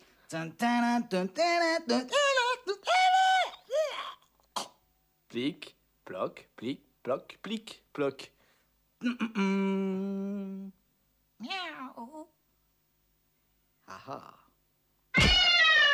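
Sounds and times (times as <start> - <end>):
speech: 0.3 - 3.1, 5.3 - 8.4, 9.0 - 10.8, 11.4 - 12.4, 13.9 - 14.4
person imitating a cat meowing: 15.2 - 15.9.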